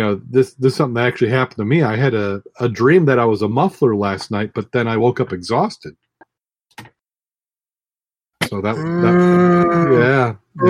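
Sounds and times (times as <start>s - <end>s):
speech: 0.0s - 6.0s, 8.5s - 10.6s
cow mooing: 8.8s - 10.6s.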